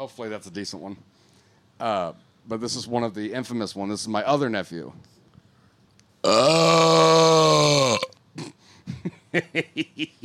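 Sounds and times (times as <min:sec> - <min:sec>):
speech: 0:00.0 - 0:05.2, 0:06.2 - 0:07.9, 0:09.0 - 0:10.2
long loud burp: 0:06.2 - 0:08.6
short rhythmic bursts of laughter: 0:08.9 - 0:10.2.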